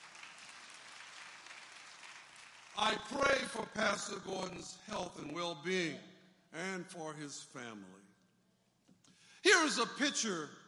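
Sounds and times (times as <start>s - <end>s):
audience applauding: 0.0s - 3.8s
speech: 2.8s - 8.0s, 9.5s - 10.6s.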